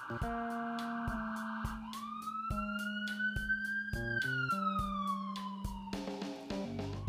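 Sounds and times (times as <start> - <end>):
emergency vehicle sirens passing outside: 0.0 - 7.0.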